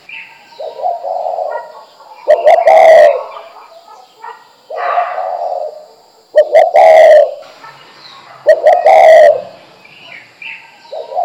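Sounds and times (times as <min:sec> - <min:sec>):
spotted dove song of soft low coos: 0:00.6 - 0:07.4, 0:08.3 - 0:09.6, 0:10.9 - 0:11.2.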